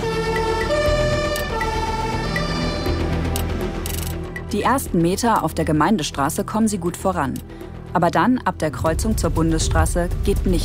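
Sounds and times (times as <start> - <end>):
emergency vehicle siren wailing as the vehicle sets off toward an incident: 0.0 - 3.2
speech: 4.5 - 10.6.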